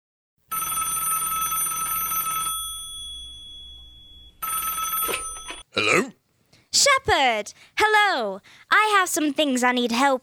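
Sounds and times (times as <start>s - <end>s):
telephone ringing on the line to the police station: 0.5s - 5.7s
speech: 5.8s - 10.2s.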